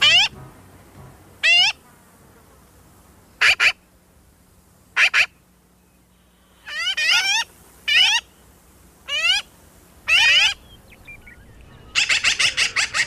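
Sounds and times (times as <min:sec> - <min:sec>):
black-billed magpie calling: 0:00.0 - 0:00.4, 0:03.4 - 0:03.8, 0:05.0 - 0:05.4, 0:06.6 - 0:08.3, 0:09.1 - 0:09.5, 0:10.1 - 0:13.0.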